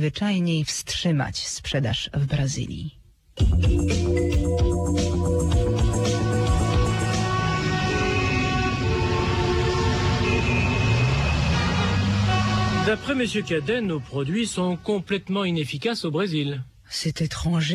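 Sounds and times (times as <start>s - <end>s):
speech: 0.0s - 5.4s, 12.9s - 17.7s
car engine droning from inside a car driving home at night: 6.4s - 15.2s
faint road noise: 6.6s - 16.6s.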